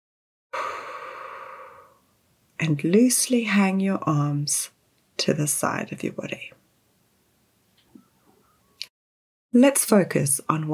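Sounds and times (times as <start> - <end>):
slow deep calming breath in and out during a guided relaxation exercise: 0.6 - 2.1
speech: 2.6 - 6.6, 9.5 - 10.7.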